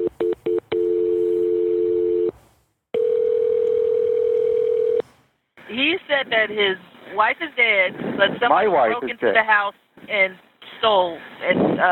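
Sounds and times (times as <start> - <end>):
phone line beeps: 0.0 - 2.3, 3.0 - 5.0
telephone dial tone: 0.0 - 2.3, 3.0 - 5.0
speech: 6.1 - 11.8.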